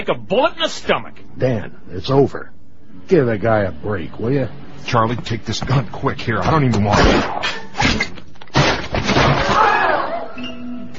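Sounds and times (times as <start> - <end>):
speech: 0.0 - 8.1
gunshot: 6.9 - 9.6
heavy ceiling lamp crashing down with breaking glass: 7.0 - 9.7
debris clattering: 7.8 - 9.7.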